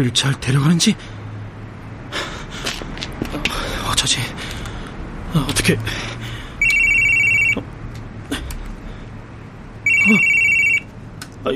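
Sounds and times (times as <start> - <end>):
speech: 0.0 - 1.2, 4.0 - 4.6, 5.3 - 6.2, 10.1 - 10.3
low hum: 0.0 - 11.5
telephone ringing in electronic trilling bursts: 6.6 - 7.6, 9.8 - 10.9.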